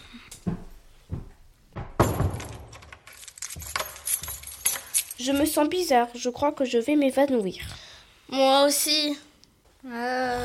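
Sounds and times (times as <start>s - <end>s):
metallic clicks and rattling of a door being locked: 2.0s - 5.5s
keys jangling and scraping near a lock: 2.5s - 5.8s
speech: 5.2s - 10.4s.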